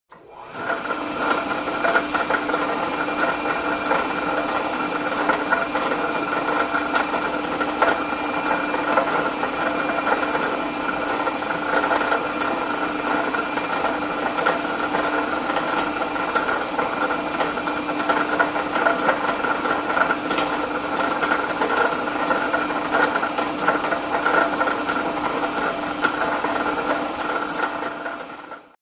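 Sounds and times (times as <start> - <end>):
lathe running: 0.2 - 28.7.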